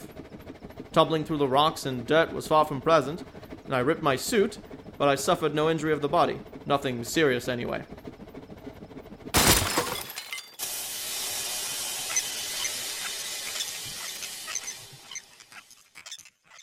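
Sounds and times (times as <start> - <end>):
speech: 1.0 - 8.0
steam buggy crashing into a creek with breaking debris: 9.4 - 10.7
hiss of steam from a crashed steam buggy: 10.6 - 15.5.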